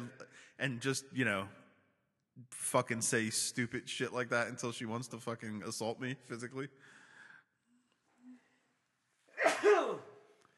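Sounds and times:
speech: 0.6s - 1.6s, 2.4s - 7.0s
loud sharp sneeze: 9.3s - 10.3s.

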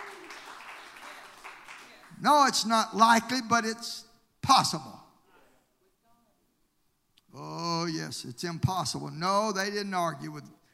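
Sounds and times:
crowd clapping: 0.0s - 2.2s
speech: 2.2s - 5.0s, 7.9s - 10.6s.

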